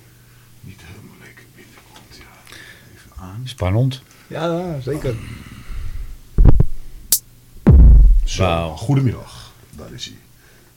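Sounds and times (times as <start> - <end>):
speech: 0.7 - 1.4, 3.2 - 5.5, 8.4 - 10.3
deep punchy kick drum sample hits: 6.4 - 6.8, 7.6 - 8.5.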